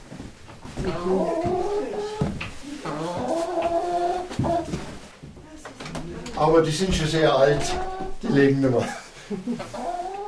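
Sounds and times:
speech: 0:00.8 - 0:01.6, 0:06.4 - 0:09.8
two hens clucking and crooning in a stable: 0:00.8 - 0:05.0, 0:06.0 - 0:08.7, 0:09.4 - 0:10.2
laughter: 0:08.7 - 0:09.8.

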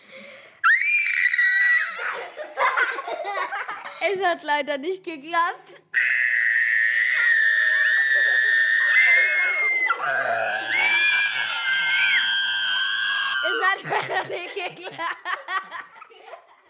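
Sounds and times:
child screaming loudly into a glass: 0:00.6 - 0:02.2, 0:05.9 - 0:13.6
child giggling with wheezy laughter: 0:02.0 - 0:04.0, 0:13.4 - 0:16.6
speech: 0:03.4 - 0:05.7, 0:10.0 - 0:10.7, 0:13.4 - 0:15.3.

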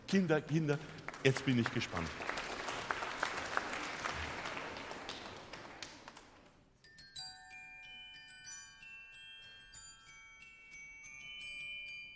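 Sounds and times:
audience applause: 0:00.0 - 0:06.6
speech: 0:00.1 - 0:02.4
glockenspiel melody played by an audience volunteer: 0:06.8 - 0:12.1.

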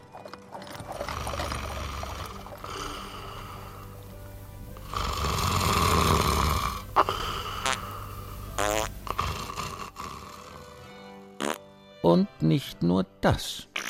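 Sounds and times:
man snoring loudly in deep rattling breaths: 0:01.0 - 0:04.0, 0:04.7 - 0:10.9
speech: 0:12.1 - 0:13.7.

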